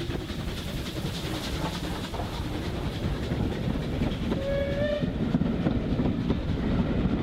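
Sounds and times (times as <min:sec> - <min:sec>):
steam train rolling along rails: 0:00.0 - 0:07.2
steam train whistle: 0:04.4 - 0:05.2.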